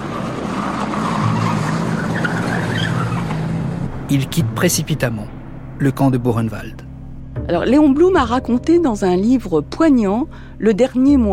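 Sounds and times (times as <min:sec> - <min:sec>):
car tires skidding and squealing: 0:00.0 - 0:04.5
car engine revving and pulling away: 0:00.0 - 0:08.1
speech: 0:04.1 - 0:06.8, 0:07.5 - 0:11.3.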